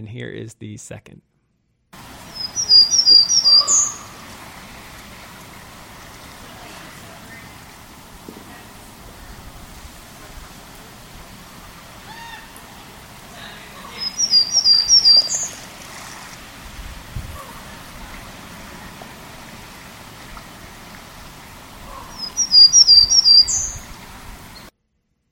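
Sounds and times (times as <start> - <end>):
speech: 0.0 - 1.3
soft steady noise: 0.0 - 23.7
Townsend's Warbler singing: 2.1 - 15.7, 18.6 - 24.7.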